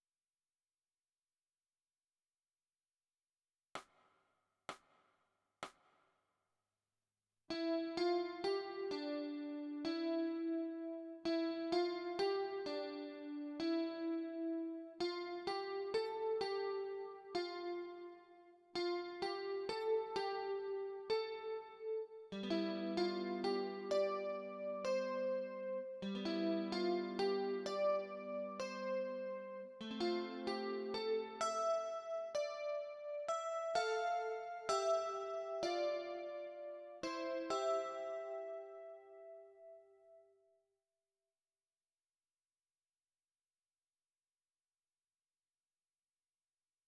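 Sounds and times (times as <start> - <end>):
guitar with chorus effect: 7.5 - 39.8.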